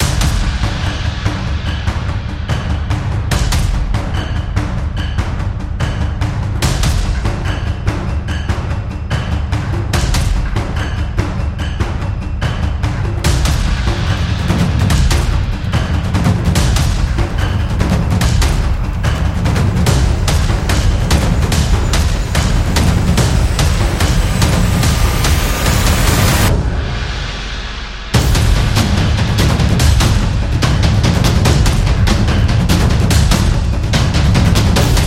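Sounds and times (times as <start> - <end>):
epic action trailer taiko drums: 0.0 - 35.0.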